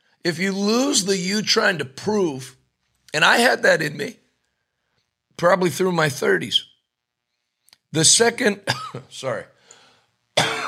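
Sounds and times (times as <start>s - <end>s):
speech: 0.2s - 4.2s, 5.4s - 6.7s, 7.9s - 9.6s
person coughing involuntarily: 8.7s - 9.1s, 10.4s - 10.6s.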